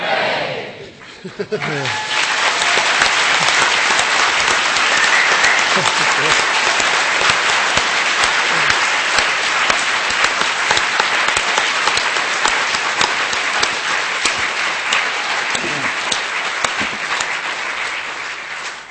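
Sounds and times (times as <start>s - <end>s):
laughter: 0.9s - 10.2s, 15.3s - 17.2s
large crowd clapping in a hall: 1.0s - 18.8s
scattered cheers: 1.6s - 9.8s.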